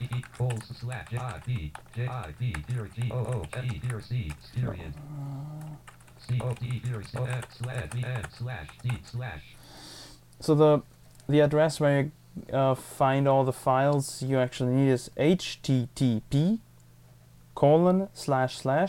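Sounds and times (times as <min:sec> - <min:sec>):
rapid typing on a computer keyboard: 0:00.0 - 0:04.5, 0:05.6 - 0:09.0
low steady hum: 0:00.0 - 0:18.8
speech: 0:00.4 - 0:09.8, 0:10.4 - 0:16.7, 0:17.6 - 0:18.8.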